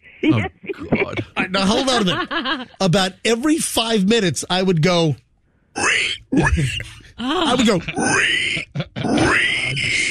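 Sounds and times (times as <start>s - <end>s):
speech: 0.2s - 5.2s, 5.8s - 10.0s
laughter: 0.3s - 3.0s, 7.2s - 9.7s
person imitating a pig squeal: 7.7s - 10.1s.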